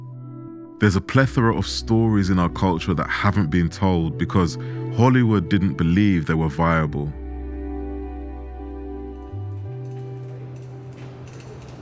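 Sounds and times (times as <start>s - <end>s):
speech: 0.8s - 7.2s
clicks and clatter: 9.6s - 11.8s
mechanical rumble of props wheeled and cameras moving on booms and tracks: 9.7s - 11.8s.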